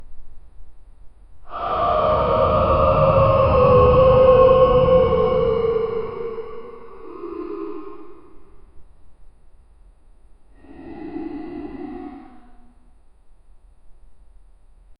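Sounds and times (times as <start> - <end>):
distant echoing screech: 1.5 - 8.8, 10.6 - 13.0.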